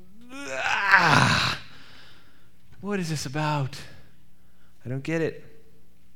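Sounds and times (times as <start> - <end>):
man groaning: 0.2 - 1.7
speech: 2.9 - 4.0, 4.8 - 5.5.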